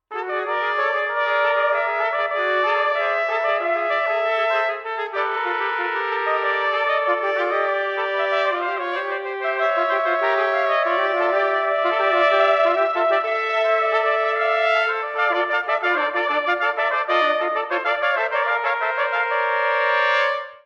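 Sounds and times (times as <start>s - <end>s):
horn trumpets playing allegretto: 0.1s - 20.6s.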